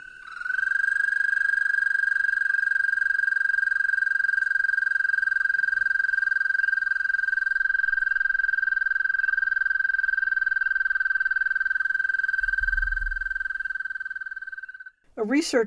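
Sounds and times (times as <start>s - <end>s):
toad long high trill: 0.0s - 15.4s
faint low thump: 12.4s - 13.6s
speech: 15.2s - 15.6s.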